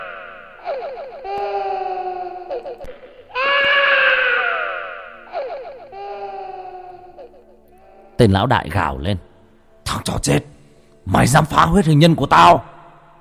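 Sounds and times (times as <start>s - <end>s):
child crying and wailing: 0.0s - 8.2s
speech: 8.2s - 9.3s, 9.9s - 12.7s.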